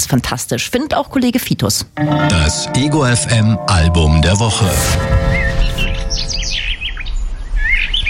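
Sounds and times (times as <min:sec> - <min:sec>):
speech: 0:00.0 - 0:05.9
bird singing a warbling whistled song: 0:05.3 - 0:08.0.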